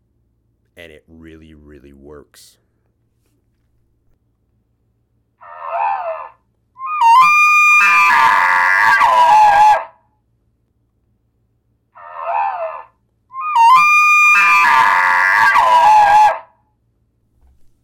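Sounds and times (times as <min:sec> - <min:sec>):
speech: 0:00.8 - 0:02.6
bull elk bugle call: 0:05.4 - 0:10.0, 0:12.0 - 0:16.5.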